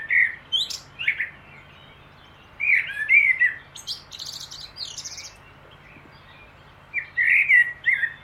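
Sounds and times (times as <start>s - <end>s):
common blackbird singing, Turdus merula: 0.0s - 8.2s.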